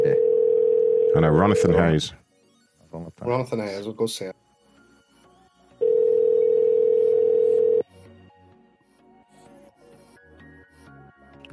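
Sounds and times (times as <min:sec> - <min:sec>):
phone line ringing tone: 0:00.0 - 0:01.9, 0:05.8 - 0:07.8
speech: 0:01.2 - 0:02.2, 0:02.9 - 0:04.4.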